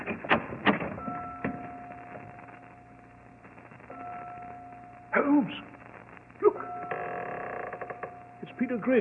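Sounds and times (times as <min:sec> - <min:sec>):
heavy bell tower door creaking open: 0:00.0 - 0:01.8, 0:06.8 - 0:08.2
speech: 0:05.2 - 0:05.7, 0:08.6 - 0:08.9.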